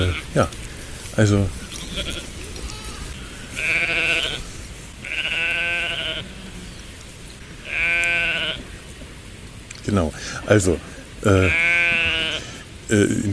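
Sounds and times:
sheep bleating: 0.0s - 8.7s, 10.9s - 12.7s
speech: 0.1s - 2.1s, 9.9s - 11.7s, 12.9s - 13.3s.

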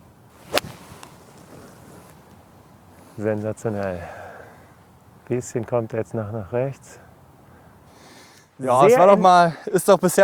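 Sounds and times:
quiet outdoor ambience on a golf course: 0.0s - 10.2s
golf club striking a ball on a golf course: 0.5s - 1.2s
speech: 3.2s - 4.2s, 5.3s - 7.0s, 8.6s - 10.2s.

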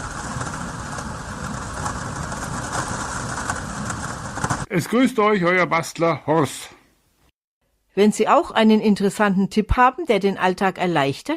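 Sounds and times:
heavy rain drumming on plexiglass covers: 0.0s - 4.7s
speech: 4.7s - 6.8s, 8.0s - 11.3s.

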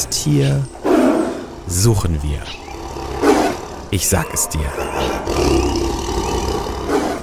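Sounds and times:
speech: 0.2s - 0.8s, 1.7s - 2.6s, 3.9s - 5.6s
tiger roaring: 0.8s - 1.6s, 2.4s - 7.2s.

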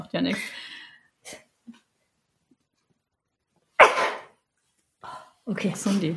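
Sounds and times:
speech: 0.1s - 1.4s, 5.5s - 6.1s
person sneezing: 3.8s - 4.3s.

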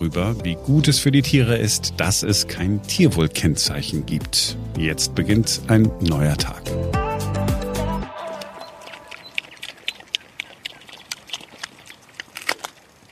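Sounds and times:
speech: 0.0s - 7.0s
pigs munching apples in a meadow: 8.3s - 13.1s.

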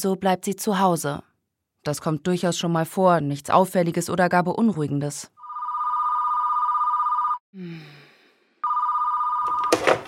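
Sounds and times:
speech: 0.0s - 5.4s, 7.6s - 8.0s
home telephone ringing in electronic trill: 5.4s - 7.4s, 8.6s - 10.0s.

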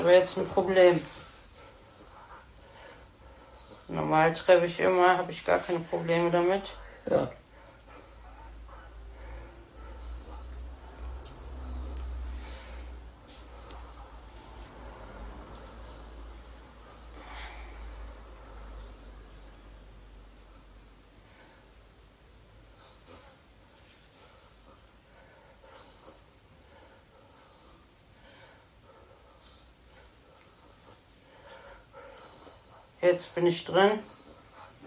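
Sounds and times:
speech: 0.0s - 1.2s, 3.9s - 7.4s, 33.1s - 34.2s
hiss: 0.0s - 34.8s
man breathing heavily with snuffling: 1.1s - 3.9s, 6.8s - 19.4s, 20.6s - 33.0s.

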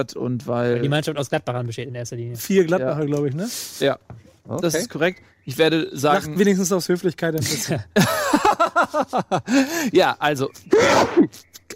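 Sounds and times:
speech: 0.0s - 11.5s
laughter: 7.4s - 9.9s
single loud sneeze: 10.7s - 11.5s.

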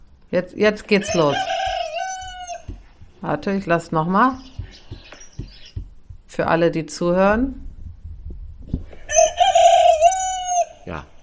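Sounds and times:
speech: 0.3s - 1.6s, 3.2s - 4.5s, 6.4s - 7.6s
rooster crowing: 1.0s - 3.0s, 9.1s - 11.2s.

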